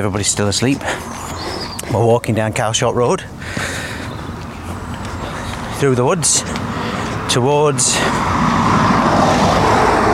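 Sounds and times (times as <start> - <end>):
speech: 0.0 - 3.8, 5.8 - 9.5
loud road traffic roar: 0.0 - 10.1
car rushing by on a road: 6.6 - 10.1.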